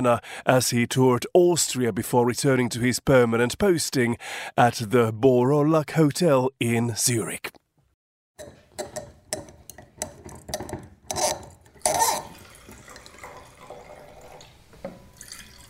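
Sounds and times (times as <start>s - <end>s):
speech: 0.0s - 7.6s, 8.4s - 8.9s
wine pouring into a glass: 11.6s - 15.6s.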